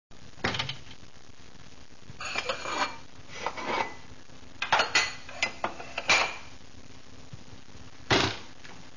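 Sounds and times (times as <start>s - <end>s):
lunch ambience with bowl: 2.2s - 6.5s.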